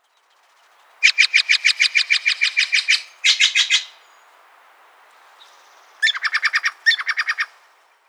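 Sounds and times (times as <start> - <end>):
Steller's jay calling: 1.0 - 4.1, 6.0 - 7.6.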